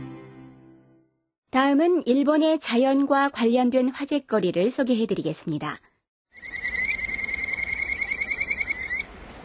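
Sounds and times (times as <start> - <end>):
speech: 1.7 - 5.9
kajika frog trilling call: 6.4 - 9.1.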